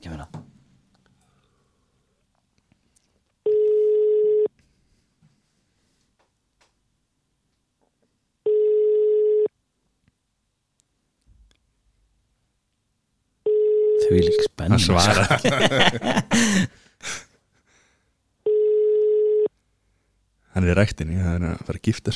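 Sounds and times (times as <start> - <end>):
ringing tone of an outgoing Messenger call: 3.4 - 4.5, 8.4 - 9.5, 13.4 - 14.5, 18.4 - 19.5
speech: 14.2 - 17.2, 20.8 - 22.1
laughter: 14.8 - 16.8.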